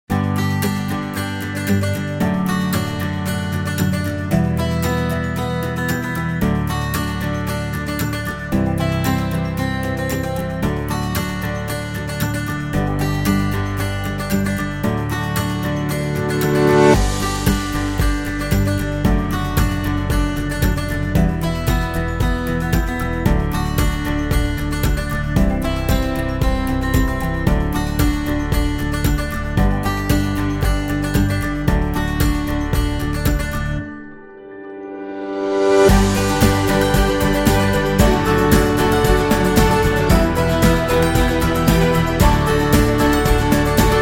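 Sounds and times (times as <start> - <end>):
happy acoustic guitar background music: 0.0 - 44.0.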